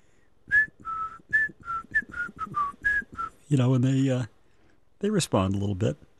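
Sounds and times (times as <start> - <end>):
person whistling a bouncy song tune: 0.5 - 3.4
speech: 3.5 - 4.4, 5.0 - 6.1.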